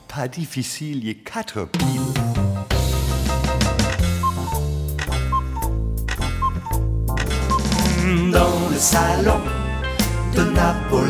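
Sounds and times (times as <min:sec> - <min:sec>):
speech: 0:00.2 - 0:02.3, 0:08.4 - 0:09.6, 0:10.3 - 0:11.0
bright full musical accompaniment: 0:01.8 - 0:11.0
alarm clock tick-tock: 0:03.9 - 0:11.0.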